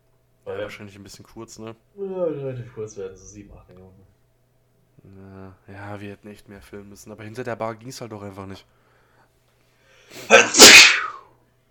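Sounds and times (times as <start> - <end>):
speech: 0.5 - 4.2, 5.0 - 8.8
sneeze: 10.2 - 11.3.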